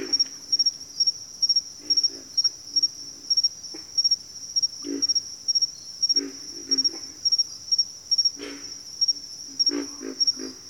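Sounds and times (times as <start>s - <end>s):
pulsing high-pitched cricket chorus: 0.0s - 10.6s
pig frog grunts: 1.8s - 2.4s, 4.8s - 5.2s, 6.1s - 7.2s, 8.4s - 8.8s, 9.6s - 10.6s.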